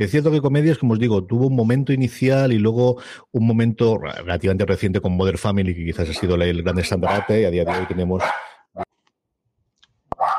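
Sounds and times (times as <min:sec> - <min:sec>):
speech: 0:00.0 - 0:08.5
female dog barking: 0:06.7 - 0:08.9, 0:10.2 - 0:10.3.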